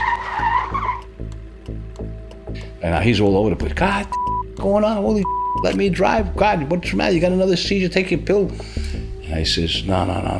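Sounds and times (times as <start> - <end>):
car tires screeching to a stop: 0.0 - 1.2
rhythmic low rumble of a stopped car engine: 0.0 - 6.6
speech: 2.8 - 10.3.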